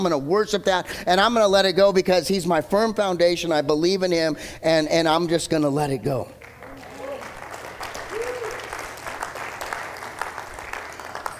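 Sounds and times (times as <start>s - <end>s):
speech: 0.0s - 6.4s
large crowd applauding: 6.4s - 11.3s.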